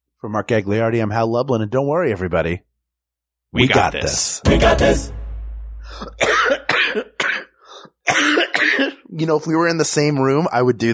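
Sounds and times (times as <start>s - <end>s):
speech: 0.2s - 2.7s, 3.5s - 5.2s, 5.9s - 7.1s, 8.1s - 10.9s
harsh coughing fit with rough bursts: 5.9s - 9.1s.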